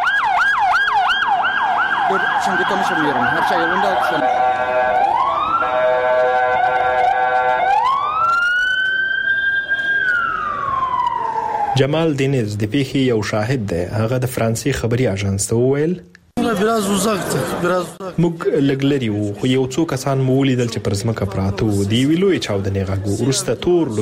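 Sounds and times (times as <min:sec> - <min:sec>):
ambulance and police car sirens racing toward an explosion scene: 0:00.0 - 0:12.3
speech: 0:02.1 - 0:05.8, 0:11.8 - 0:24.0
laughter: 0:16.4 - 0:19.7.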